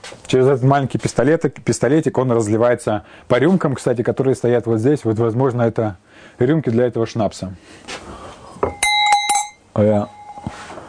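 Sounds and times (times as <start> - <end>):
speech: 0.3 - 8.8, 9.8 - 10.6
small cowbell ringing: 8.6 - 10.6.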